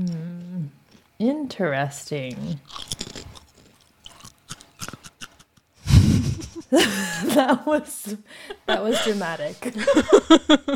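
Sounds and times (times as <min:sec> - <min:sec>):
speech: 0:01.2 - 0:02.8, 0:06.7 - 0:10.7
crunchy hollow bites: 0:02.6 - 0:05.5.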